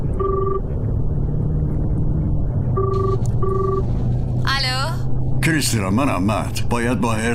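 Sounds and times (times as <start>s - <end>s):
constant low engine-like rumble: 0.0s - 7.3s
phone line ringing in short electronic tone bursts: 0.2s - 0.6s, 2.8s - 3.9s
speech: 5.5s - 7.3s.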